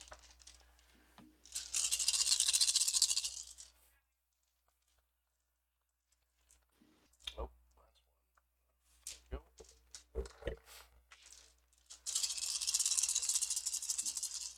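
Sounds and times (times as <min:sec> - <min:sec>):
dice being shaken and rolled: 0:00.0 - 0:03.7, 0:09.0 - 0:10.4, 0:11.1 - 0:14.5.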